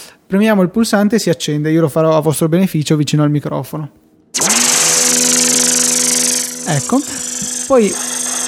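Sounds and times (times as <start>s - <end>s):
speech: 0.3s - 4.0s, 6.7s - 8.1s
circular saw sound effect from an iPad app running at full speed: 4.4s - 8.4s.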